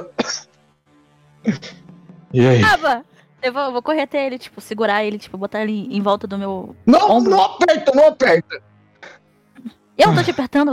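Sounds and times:
person imitating raspy coughing: 0:00.0 - 0:00.5, 0:01.5 - 0:01.8
speech: 0:01.4 - 0:10.7.

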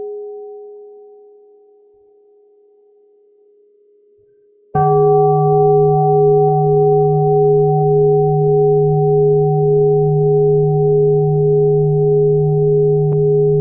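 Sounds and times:
large mindfulness bell struck and ringing: 0:04.8 - 0:13.5.

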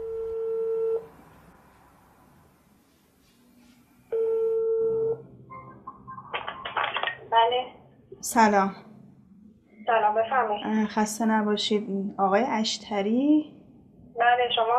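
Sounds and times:
mobile phone ringback tone: 0:00.0 - 0:01.1, 0:04.1 - 0:05.9
speech: 0:08.2 - 0:08.8, 0:10.1 - 0:13.6, 0:14.2 - 0:14.7.

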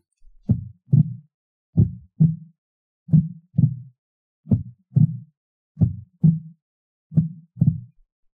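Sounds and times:
slow steady heartbeat: 0:00.2 - 0:01.2, 0:01.8 - 0:02.5, 0:03.1 - 0:03.9, 0:04.5 - 0:08.0.

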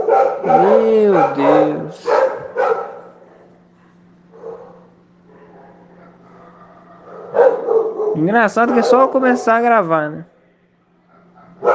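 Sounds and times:
dogs yelping and whining: 0:00.0 - 0:03.4, 0:04.3 - 0:09.6
dogs from a home kennel and street dogs barking: 0:00.0 - 0:09.8, 0:11.0 - 0:11.7
speech: 0:00.4 - 0:02.2, 0:08.2 - 0:10.3.

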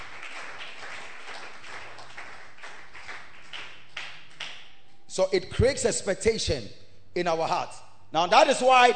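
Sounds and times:
audience clapping: 0:00.0 - 0:04.8
speech: 0:05.2 - 0:08.9.

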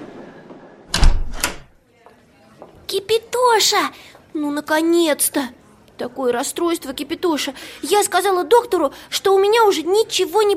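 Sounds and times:
door opening: 0:00.9 - 0:01.8
speech: 0:03.0 - 0:10.5.

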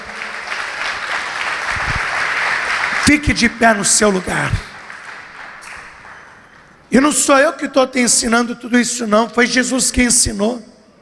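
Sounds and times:
church congregation applauding: 0:00.0 - 0:06.8
speech: 0:03.1 - 0:04.8, 0:06.9 - 0:10.8.

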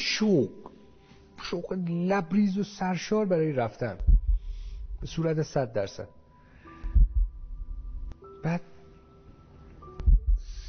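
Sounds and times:
speech: 0:00.2 - 0:00.7, 0:01.5 - 0:04.2, 0:05.0 - 0:06.2, 0:08.4 - 0:08.7
heartbeat with two deep lub-dub thumps: 0:04.0 - 0:05.2, 0:06.8 - 0:08.0, 0:10.0 - 0:10.6
low hum: 0:06.8 - 0:08.2.

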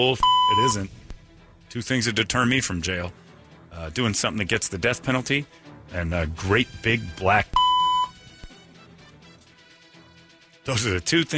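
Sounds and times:
speech: 0:00.0 - 0:01.0, 0:01.7 - 0:07.6, 0:10.6 - 0:11.3
censor bleep: 0:00.2 - 0:00.8, 0:07.6 - 0:08.2.

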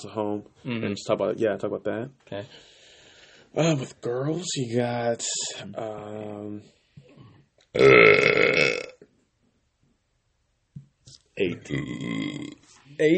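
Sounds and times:
speech: 0:00.0 - 0:02.8, 0:03.5 - 0:06.8, 0:07.7 - 0:08.8, 0:11.4 - 0:13.1
loud raspy burp: 0:07.8 - 0:09.0, 0:11.6 - 0:12.6.

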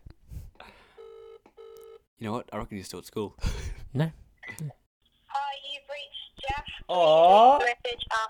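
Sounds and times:
phone ringback tone: 0:01.0 - 0:02.0
speech: 0:02.2 - 0:04.8, 0:06.9 - 0:08.2.

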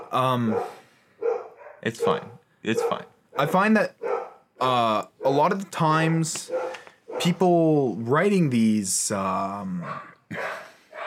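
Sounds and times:
dogs barking at someone at the door: 0:00.0 - 0:05.5, 0:06.4 - 0:07.5, 0:09.8 - 0:11.0
speech: 0:00.1 - 0:00.8, 0:01.8 - 0:04.0, 0:04.6 - 0:06.6, 0:07.2 - 0:10.6.

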